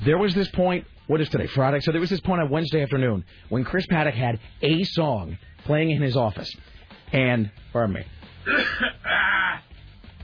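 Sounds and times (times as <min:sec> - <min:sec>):
speech: 0:00.0 - 0:09.7
quiet breathing: 0:03.2 - 0:03.6, 0:06.6 - 0:07.1
person clearing throat: 0:08.5 - 0:09.6.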